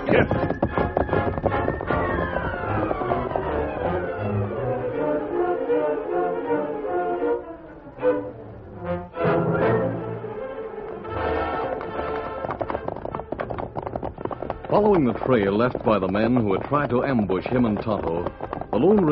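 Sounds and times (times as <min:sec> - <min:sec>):
hooves clip-clopping: 0:00.0 - 0:04.7, 0:10.8 - 0:19.1
horses galloping away: 0:00.0 - 0:05.3, 0:10.8 - 0:19.1
loud sweeping dramatic music: 0:00.0 - 0:12.4
speech: 0:00.1 - 0:00.6, 0:14.8 - 0:19.1.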